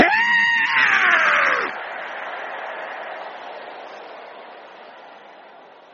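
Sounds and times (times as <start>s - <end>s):
person giving a strained rising cry: 0.0s - 1.7s
crowd of people roaring imitating a lion: 0.0s - 4.6s.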